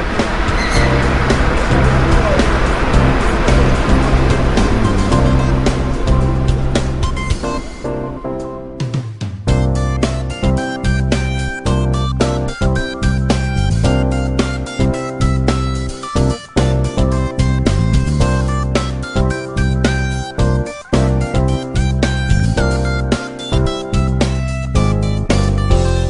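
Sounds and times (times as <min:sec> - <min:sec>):
train wheels clacking over rail joints: 0:00.0 - 0:07.8
old blue-white commuter train rumbling in motion: 0:00.0 - 0:08.8, 0:09.5 - 0:25.9.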